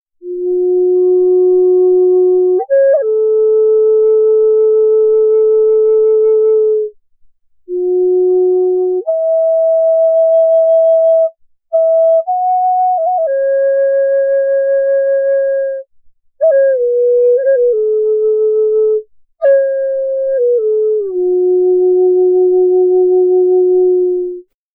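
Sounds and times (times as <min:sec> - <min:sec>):
large F sharp Eastern Cedar flute: 0:00.2 - 0:07.0, 0:07.7 - 0:24.5.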